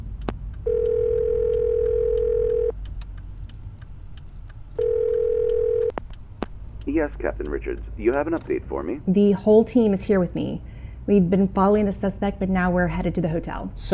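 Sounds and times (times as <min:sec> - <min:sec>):
low continuous engine rumble: 0:00.0 - 0:13.9
car phone placing a call with long electronic tones: 0:00.7 - 0:02.7, 0:04.8 - 0:05.9
speech: 0:07.0 - 0:13.9.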